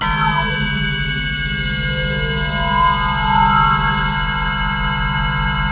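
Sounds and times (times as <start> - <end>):
disturbed machinery synth pad: 0.0 - 5.6.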